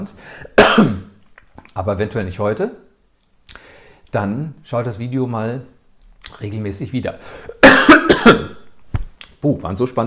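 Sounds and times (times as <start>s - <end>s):
speech: 0.0s - 1.1s, 1.8s - 2.8s, 4.1s - 7.6s, 8.2s - 8.6s, 9.4s - 10.0s
person coughing: 0.6s - 1.1s, 7.5s - 8.7s.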